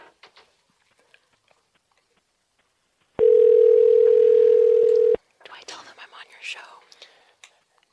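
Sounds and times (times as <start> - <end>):
telephone ringback tone while calling: 3.2 - 5.2.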